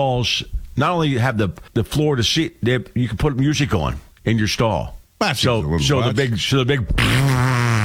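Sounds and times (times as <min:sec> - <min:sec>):
speech: 0:00.0 - 0:07.8
buzzy fart sound effect played in a public toilet stall: 0:06.9 - 0:07.8.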